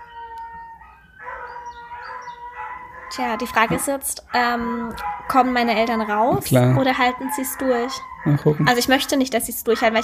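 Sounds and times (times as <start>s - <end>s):
dogs whining and howling: 0.0s - 10.0s
speech: 3.1s - 10.0s.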